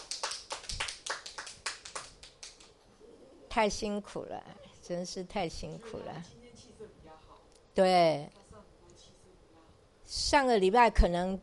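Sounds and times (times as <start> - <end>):
hands clapping: 0.0 - 2.8
speech: 3.6 - 6.4, 7.8 - 8.4, 10.3 - 11.4.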